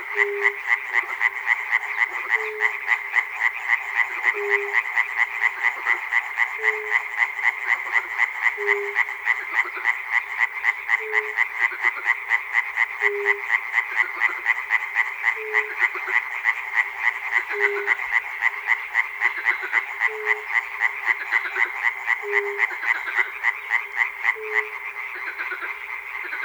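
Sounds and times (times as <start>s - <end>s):
frogs calling in a dense chorus of rattling croaks in Chernobyl: 0.0s - 26.4s.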